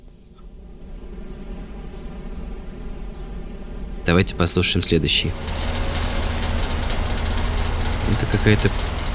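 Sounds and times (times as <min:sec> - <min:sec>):
speech: 0:04.1 - 0:05.8, 0:08.1 - 0:08.9
small moped or lawnmower engine running: 0:05.1 - 0:09.1.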